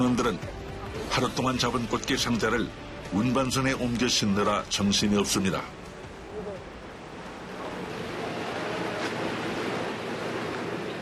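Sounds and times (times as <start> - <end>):
speech: 0.0 - 5.8
heavy rough sea waves: 0.0 - 11.0
wind over rough sea: 0.0 - 11.0.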